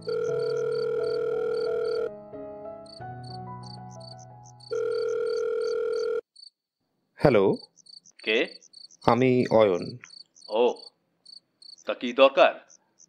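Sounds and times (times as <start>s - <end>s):
electronic phone ringtone as a call is placed at night: 0.0s - 2.1s, 2.9s - 6.3s
speech: 7.2s - 7.7s, 8.3s - 10.1s, 12.0s - 12.6s.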